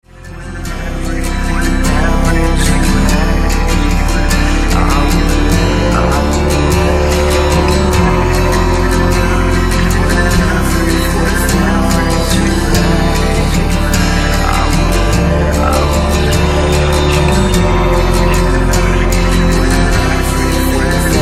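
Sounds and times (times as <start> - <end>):
instrumental music: 0.0 - 21.2.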